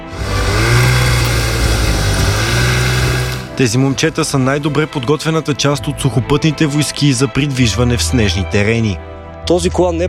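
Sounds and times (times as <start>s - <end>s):
military snowmobile engine revving in snowy terrain: 0.0s - 5.0s
speech: 3.6s - 10.0s.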